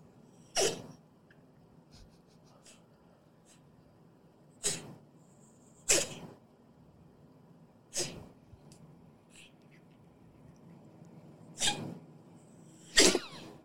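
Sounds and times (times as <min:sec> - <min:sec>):
faint low hum: 0:00.0 - 0:13.6
small dog reverse sneezing played from a video: 0:00.5 - 0:01.0, 0:04.6 - 0:05.0, 0:05.8 - 0:06.3, 0:07.9 - 0:08.3, 0:11.6 - 0:12.0, 0:12.9 - 0:13.5.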